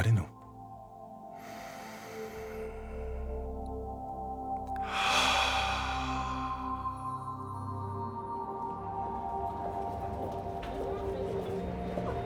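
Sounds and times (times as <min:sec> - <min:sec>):
speech: 0:00.0 - 0:00.4
steady low sustained musical drone: 0:00.0 - 0:12.2
deep inhale through nose: 0:01.3 - 0:04.0, 0:04.7 - 0:07.8
slow airy exhale: 0:01.3 - 0:07.9.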